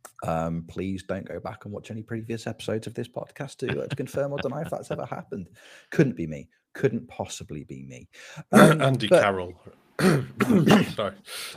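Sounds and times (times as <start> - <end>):
speech: 0.2 - 11.5
laughter: 3.6 - 5.4, 10.4 - 11.5
person coughing: 3.7 - 4.9, 10.0 - 11.0.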